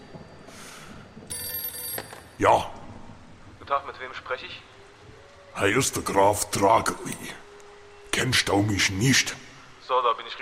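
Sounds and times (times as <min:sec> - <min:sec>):
telephone bell ringing: 0:01.3 - 0:02.4
speech: 0:02.4 - 0:02.8, 0:03.7 - 0:04.7, 0:05.6 - 0:07.4, 0:08.2 - 0:10.4.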